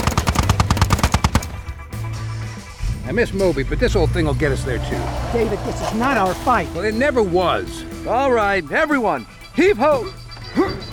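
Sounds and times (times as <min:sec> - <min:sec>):
chain gun firing: 0:00.0 - 0:01.7
speech: 0:03.1 - 0:10.8.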